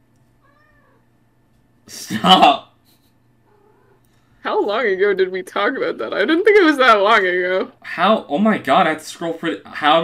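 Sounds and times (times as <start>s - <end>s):
steady low hum: 0.0s - 10.0s
cat meowing: 0.4s - 1.0s, 3.5s - 4.0s
speech: 2.1s - 2.6s, 4.7s - 10.0s.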